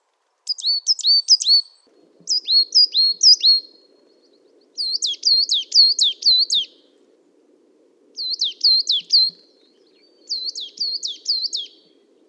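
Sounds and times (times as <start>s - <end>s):
coal tit calling: 0.5s - 1.7s, 2.3s - 3.7s, 4.8s - 6.8s, 8.2s - 9.4s, 10.3s - 11.8s.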